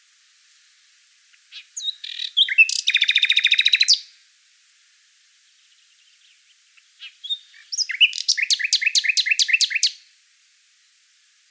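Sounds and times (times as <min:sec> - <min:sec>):
common nightingale singing: 0:01.3 - 0:04.2, 0:05.5 - 0:10.1.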